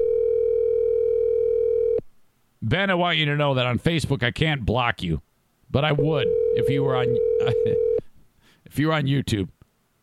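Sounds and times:
steady ringback tone of an outgoing phone call: 0.0 - 2.0, 6.0 - 8.0
speech: 2.6 - 7.9, 8.7 - 9.6.

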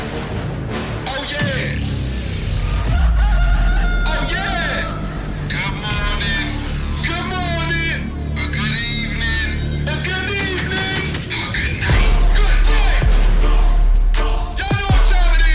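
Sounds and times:
wrestler's entrance theme song with heavy bass beat and chant-like male vocal: 0.0 - 15.5
sung chant-like male vocal: 10.7 - 15.5.

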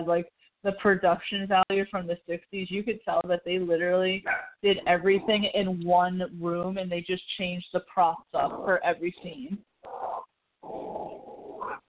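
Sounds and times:
speech: 0.0 - 9.7
female dog growling: 4.2 - 5.6, 8.4 - 11.8.

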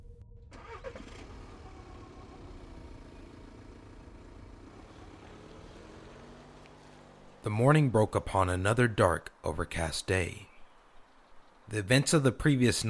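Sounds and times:
car engine starting and idling: 0.0 - 8.3
speech: 7.4 - 10.5, 11.7 - 12.8.

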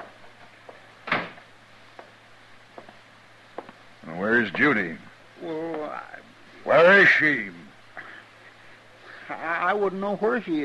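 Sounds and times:
door thudding shut: 1.0 - 1.4
speech: 4.3 - 7.6, 9.7 - 10.6.

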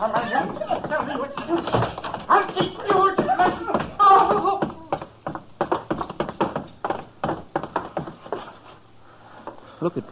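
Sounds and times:
speech: 0.0 - 1.8
cries: 0.1 - 5.1
sharp thuds and smacks of blows: 0.8 - 8.2.

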